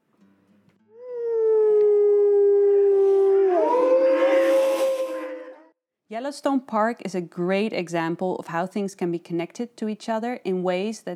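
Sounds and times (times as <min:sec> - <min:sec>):
wolves howling: 0:01.0 - 0:05.7
speech: 0:06.2 - 0:11.1.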